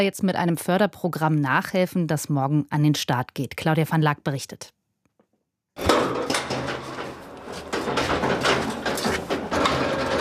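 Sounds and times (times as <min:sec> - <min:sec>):
speech: 0:00.0 - 0:04.8
freight elevator rattles and metallic clanks: 0:05.8 - 0:10.1
freight elevator running with a steady mechanical rumble: 0:05.8 - 0:10.1.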